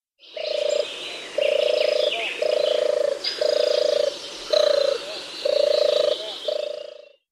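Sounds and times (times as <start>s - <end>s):
European turtle dove cooing: 0.3s - 7.2s.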